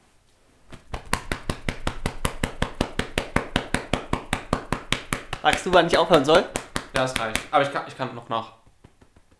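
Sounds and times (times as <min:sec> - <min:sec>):
hand patting on a shoulder: 0:00.7 - 0:09.3
speech: 0:05.4 - 0:08.6.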